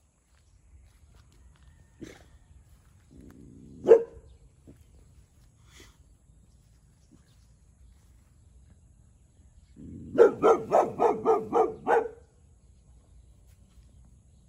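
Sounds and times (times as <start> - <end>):
Boxer dog barking: 3.8 - 4.3, 10.1 - 12.3.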